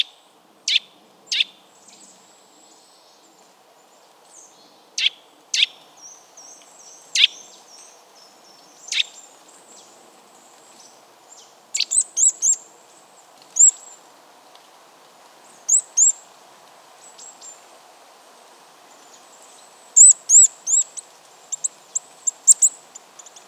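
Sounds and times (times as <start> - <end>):
Eurasian nuthatch Sitta europaea sharp calls: 0.7 - 1.5, 5.0 - 5.8, 7.2 - 7.5, 8.8 - 9.2, 11.8 - 12.6, 13.6 - 13.8, 15.7 - 16.2, 20.0 - 23.4.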